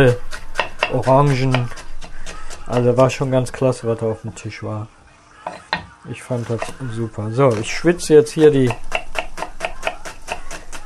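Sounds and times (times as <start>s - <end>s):
speech: 0.0s - 0.3s, 0.9s - 1.8s, 2.7s - 5.0s, 6.0s - 8.9s
knife chopping through an onion: 0.0s - 3.3s, 7.5s - 10.8s.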